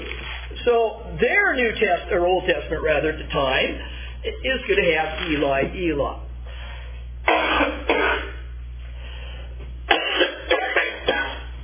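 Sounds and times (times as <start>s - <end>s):
low steady hum: 0.0s - 11.6s
speech: 0.7s - 6.2s
harsh coughs: 7.2s - 8.5s, 9.9s - 11.5s.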